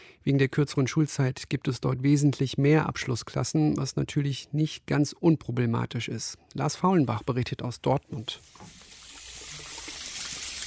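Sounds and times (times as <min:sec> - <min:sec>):
speech: 0:00.2 - 0:08.8
running tap water at a classroom sink during handwashing: 0:08.2 - 0:10.6.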